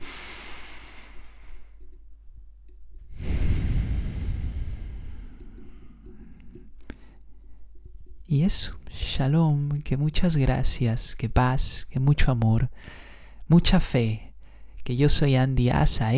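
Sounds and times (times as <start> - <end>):
single deep breath close to the microphone: 0.0 - 1.9, 3.1 - 7.6, 12.7 - 13.4
quiet room noise: 0.0 - 16.1
speech: 8.3 - 14.2, 14.8 - 16.1.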